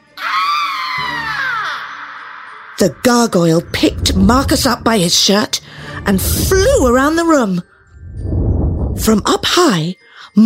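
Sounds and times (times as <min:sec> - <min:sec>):
witch screaming shrilly: 0:00.0 - 0:02.8
speech: 0:02.8 - 0:07.7, 0:09.0 - 0:10.4.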